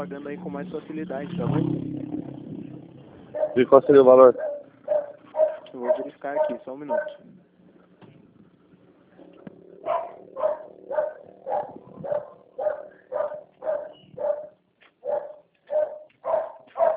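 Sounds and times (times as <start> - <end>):
speech: 0.0 - 2.4, 3.6 - 4.5, 5.7 - 7.3
dog barking: 3.3 - 7.2, 9.8 - 16.9.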